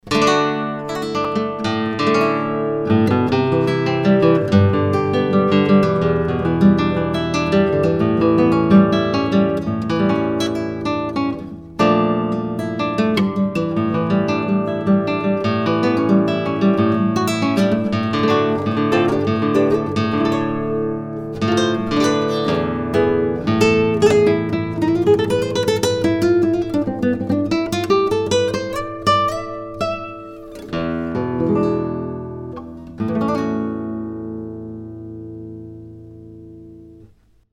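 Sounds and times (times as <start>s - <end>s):
nylon classical guitar: 0.0s - 37.5s.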